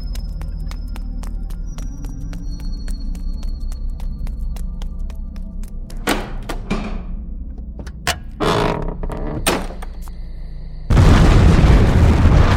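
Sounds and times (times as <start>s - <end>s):
heavy explosive blasts of an abbey being blown up: 10.9s - 12.5s
large fire roaring and crackling: 10.9s - 12.5s.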